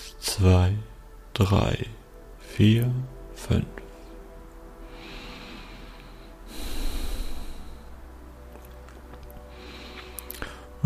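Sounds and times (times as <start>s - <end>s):
speech: 0.3s - 2.0s, 2.6s - 3.8s
slow exhale during a guided breathing exercise: 4.8s - 8.1s, 9.5s - 10.8s.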